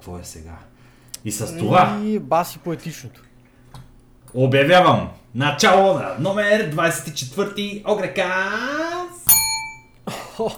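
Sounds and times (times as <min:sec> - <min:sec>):
speech: 0:00.0 - 0:03.3, 0:04.3 - 0:09.0, 0:10.4 - 0:10.5
small bell ringing: 0:09.3 - 0:10.0.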